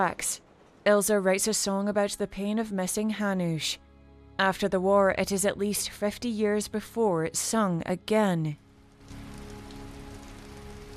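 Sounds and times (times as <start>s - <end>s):
speech: 0.0s - 3.8s, 4.4s - 8.6s
heavy pouring rain: 8.9s - 10.9s.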